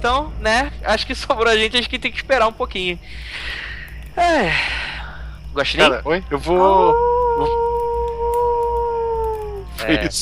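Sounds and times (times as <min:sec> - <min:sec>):
speech: 0:00.0 - 0:04.9, 0:05.6 - 0:07.7, 0:09.8 - 0:10.1
low rumble: 0:00.0 - 0:10.1
coyotes howling: 0:05.8 - 0:10.1.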